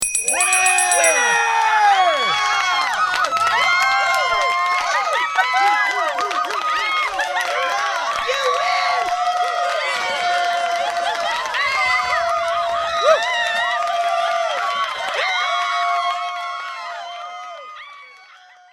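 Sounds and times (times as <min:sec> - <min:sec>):
bell: 0:00.0 - 0:03.1
crowd applause: 0:00.3 - 0:18.2.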